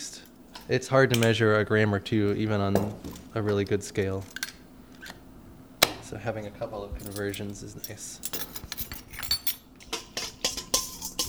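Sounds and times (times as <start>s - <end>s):
speech: 0.7s - 4.4s, 6.1s - 8.4s
whisk clinking against a bowl stirring a yeast mixture: 7.1s - 11.2s.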